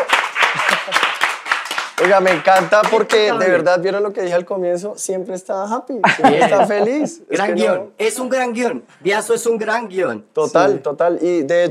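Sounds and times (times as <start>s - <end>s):
crowd applauding: 0.0s - 3.5s
laughter: 0.4s - 1.2s, 6.0s - 7.3s
speech: 2.0s - 11.6s.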